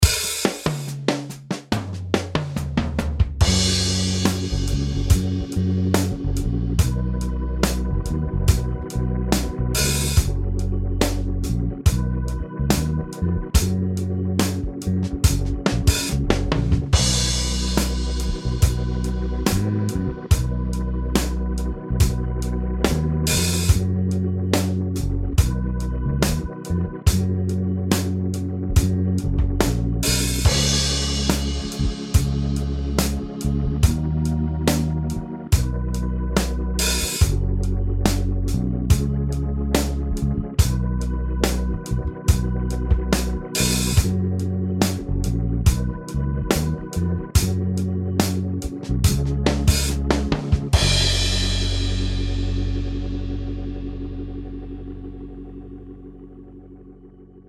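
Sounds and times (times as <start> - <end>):
slide solo backing: 0.0 - 56.4.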